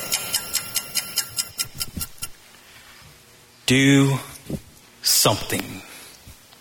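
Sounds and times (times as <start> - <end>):
clock ticking: 0.0 - 2.4
speech: 3.7 - 4.3, 5.2 - 5.9.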